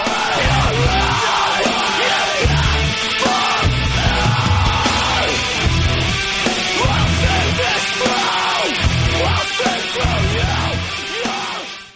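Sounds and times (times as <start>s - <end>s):
pounding drums: 0.0s - 11.7s
dense distorted guitars: 0.0s - 11.9s
screamo song with harsh screamed vocals: 0.0s - 11.9s.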